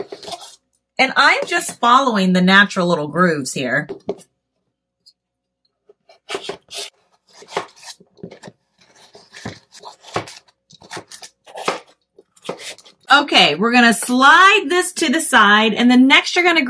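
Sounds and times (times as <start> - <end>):
knife scraping strokes on wooden cutting board: 0.0 - 0.6, 6.1 - 12.9
speech: 1.0 - 4.3, 13.1 - 16.6
knife chopping food into cubes on wooden cutting board: 6.3 - 12.8.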